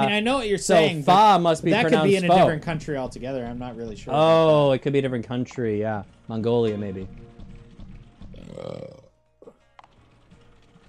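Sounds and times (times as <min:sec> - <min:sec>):
speech: 0:00.0 - 0:07.2
long loud throaty burp: 0:08.4 - 0:09.6.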